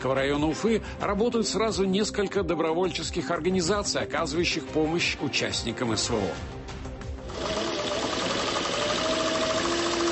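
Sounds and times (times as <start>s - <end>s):
speech: 0.0s - 6.7s
sewing machine running: 7.3s - 10.1s.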